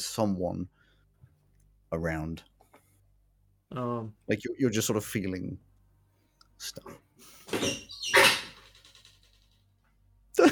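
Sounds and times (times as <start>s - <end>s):
speech: 0.0s - 0.8s, 1.9s - 2.5s, 3.7s - 5.7s, 6.6s - 8.3s
squeaky door creaking open: 7.4s - 9.6s.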